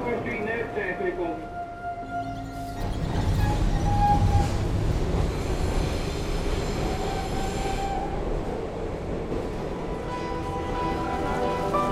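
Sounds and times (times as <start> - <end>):
subway train rumbling along underground: 0.0 - 11.9
subway train metallic wheel squeals: 2.0 - 4.7.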